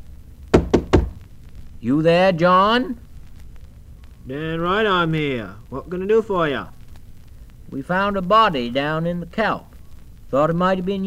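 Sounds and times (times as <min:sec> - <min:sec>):
knocking on the wooden door of a lighthouse keeper's home: 0:00.5 - 0:01.2
speech: 0:01.8 - 0:03.0, 0:04.2 - 0:06.8, 0:07.7 - 0:09.7, 0:10.3 - 0:11.0.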